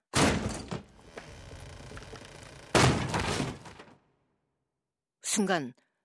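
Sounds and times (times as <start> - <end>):
wooden door being rammed by people throwing their bodies against it: 0.1 - 4.0
speech: 5.4 - 5.8.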